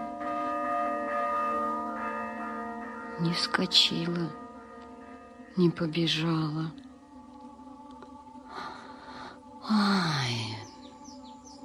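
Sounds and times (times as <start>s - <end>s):
church bell ringing an alarm peal: 0.0s - 7.4s
speech: 3.2s - 4.4s, 5.6s - 6.8s, 9.7s - 10.6s.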